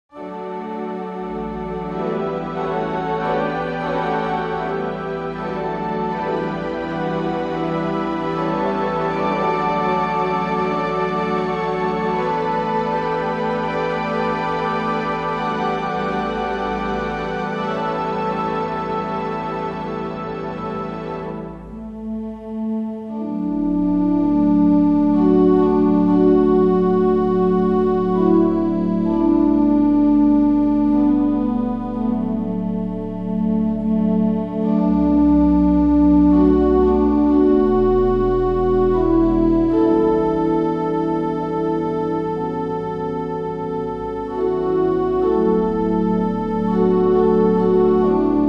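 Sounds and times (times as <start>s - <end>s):
carillon playing a hymn: 0.1s - 48.4s.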